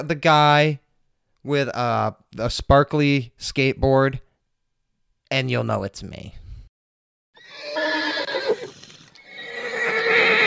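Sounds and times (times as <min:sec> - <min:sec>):
speech: 0:00.0 - 0:00.8, 0:01.4 - 0:04.2, 0:05.3 - 0:06.4
horse neighing and whinnying: 0:07.4 - 0:10.4.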